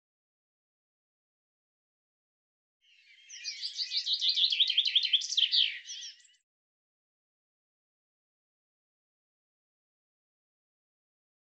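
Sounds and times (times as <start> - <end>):
bird calling in high twittering chirps: 2.9 - 6.4.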